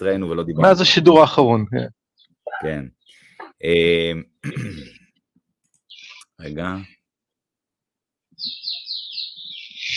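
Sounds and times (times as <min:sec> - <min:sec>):
speech: 0:00.0 - 0:02.0, 0:02.6 - 0:05.0, 0:06.4 - 0:07.0
birds chirping outdoors in a high rapid trill: 0:01.8 - 0:07.0, 0:08.3 - 0:09.9.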